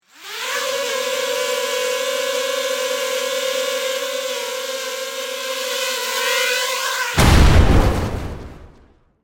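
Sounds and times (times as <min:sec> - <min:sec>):
military drone flying: 0:00.1 - 0:07.3
explosion: 0:07.2 - 0:09.2.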